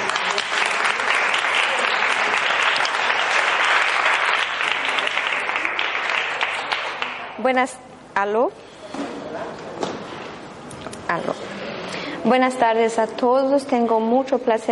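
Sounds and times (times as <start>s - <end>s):
room full of people applauding: 0.0s - 7.3s
speech: 7.4s - 9.1s, 11.1s - 14.7s.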